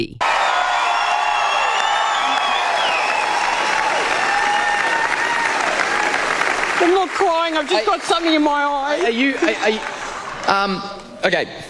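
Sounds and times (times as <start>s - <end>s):
speech: 0.0s - 0.2s, 7.3s - 11.6s
whistles and whoops from a crowd: 0.2s - 6.4s
large crowd applauding in a standing ovation at a television awards ceremony: 0.2s - 11.1s.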